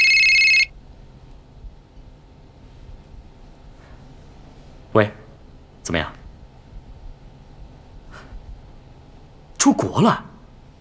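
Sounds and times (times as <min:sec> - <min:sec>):
telephone ringing: 0:00.0 - 0:00.7
speech: 0:05.0 - 0:05.2, 0:05.9 - 0:06.2, 0:09.7 - 0:10.3.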